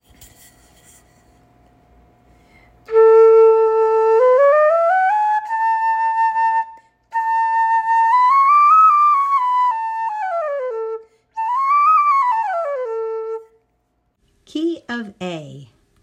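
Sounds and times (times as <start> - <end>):
bamboo flutes playing in the key of A: 2.8 - 13.6.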